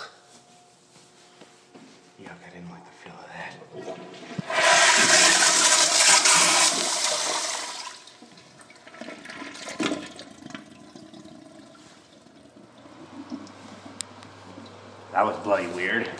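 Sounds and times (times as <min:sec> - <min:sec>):
speech: 0:02.2 - 0:04.6, 0:15.2 - 0:16.1
toilet flushing: 0:03.7 - 0:14.8.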